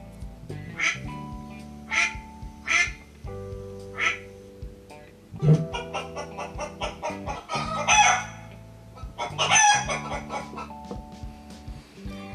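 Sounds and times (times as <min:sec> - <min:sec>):
soft music: 0:00.0 - 0:12.3
duck quacking: 0:05.8 - 0:08.5, 0:09.2 - 0:10.7
rooster crowing: 0:07.3 - 0:08.4.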